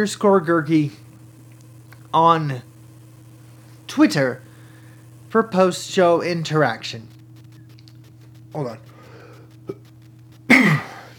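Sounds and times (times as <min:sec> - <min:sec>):
speech: 0:00.0 - 0:01.0, 0:02.1 - 0:02.7, 0:03.9 - 0:04.4, 0:05.3 - 0:07.1, 0:08.5 - 0:08.9
low steady hum: 0:00.0 - 0:11.1
faint click: 0:01.1 - 0:02.1, 0:07.1 - 0:10.5
short stifled throat sound like a held-back cough or burp: 0:09.1 - 0:11.1.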